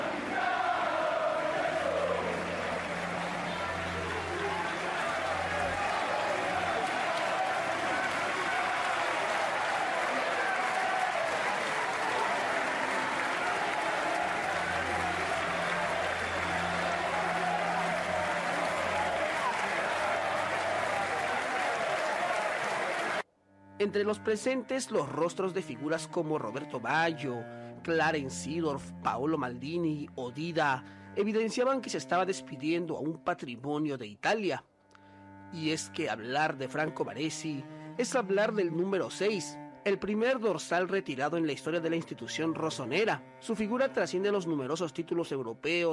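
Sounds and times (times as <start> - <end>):
hundreds of fans applauding outside: 0.0 - 23.2
speech: 23.8 - 34.7, 35.5 - 45.9.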